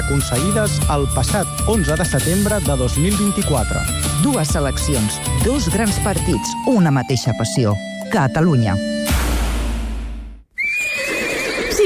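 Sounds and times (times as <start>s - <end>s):
speech: 0.1s - 9.1s
horse whinnying: 10.5s - 11.8s.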